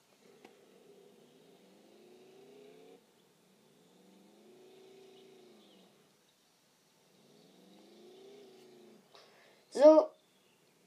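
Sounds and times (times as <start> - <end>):
video game car engine droning and revving: 0.3 - 6.1, 7.0 - 9.0
speech: 9.8 - 10.1.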